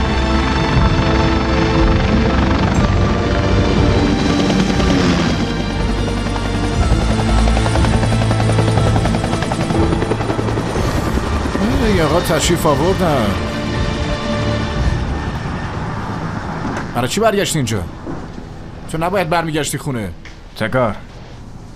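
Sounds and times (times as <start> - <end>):
helicopter engine running: 0.0 - 17.0
speech: 12.0 - 13.5, 17.0 - 18.0, 18.9 - 21.1.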